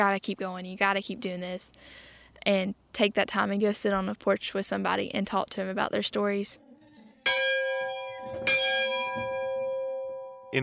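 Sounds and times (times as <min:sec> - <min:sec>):
speech: 0:00.0 - 0:06.6
church bell ringing at a hillside museum of old buildings: 0:07.3 - 0:10.5.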